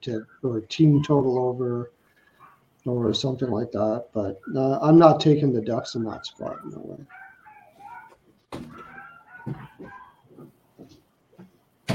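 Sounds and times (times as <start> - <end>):
speech: 0.0 - 2.0, 2.8 - 7.2
pet dogs yelping: 0.8 - 1.5, 2.3 - 2.7, 4.3 - 4.9, 5.7 - 10.6
pet dogs barking: 0.9 - 1.4, 2.3 - 3.7, 4.3 - 4.9, 5.7 - 10.5.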